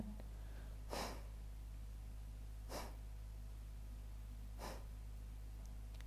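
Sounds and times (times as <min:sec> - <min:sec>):
steady low hum: 0:00.0 - 0:06.0
short sharp bursts of breath forced out through the nose during a guided breathing exercise: 0:00.9 - 0:01.3, 0:02.7 - 0:03.0, 0:04.6 - 0:04.9.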